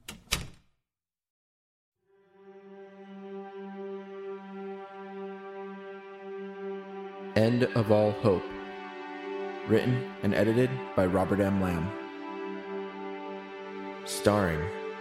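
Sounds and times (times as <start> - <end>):
door shutting: 0.0 - 0.7
low droning musical tone: 2.1 - 14.9
speech: 7.4 - 8.5, 9.7 - 12.0, 14.2 - 14.8.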